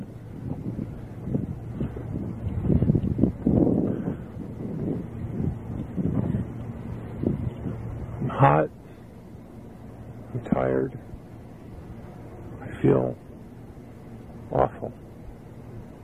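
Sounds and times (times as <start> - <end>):
wind blowing across the microphone outdoors: 0.0 - 16.0.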